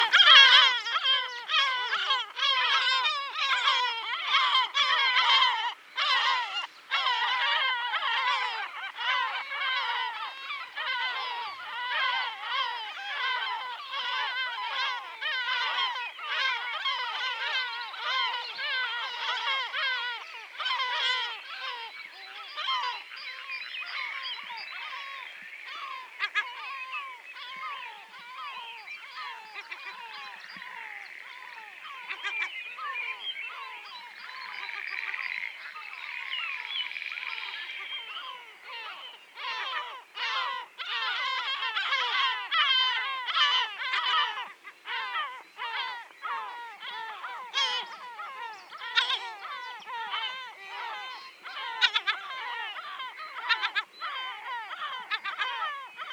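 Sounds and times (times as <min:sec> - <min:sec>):
yellow-legged gull Larus michahellis calling: 0:00.0 - 0:56.1.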